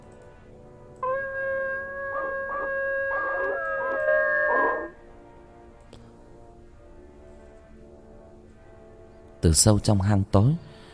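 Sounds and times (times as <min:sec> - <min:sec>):
pack of dogs howling together: 0:01.0 - 0:05.0
speech: 0:09.4 - 0:10.7.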